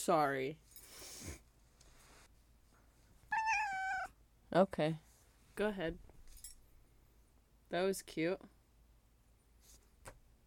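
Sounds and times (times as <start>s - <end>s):
speech: 0.0s - 0.6s, 4.5s - 5.0s, 5.6s - 6.1s, 7.7s - 8.6s
cat meowing at feeding time: 3.3s - 4.2s.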